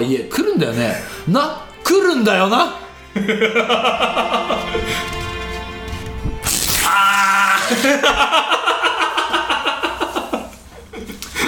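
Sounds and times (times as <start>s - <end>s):
speech: 0.0s - 5.2s, 7.7s - 8.6s
laughter: 3.1s - 5.2s, 7.4s - 11.4s
paper tearing: 6.4s - 7.3s.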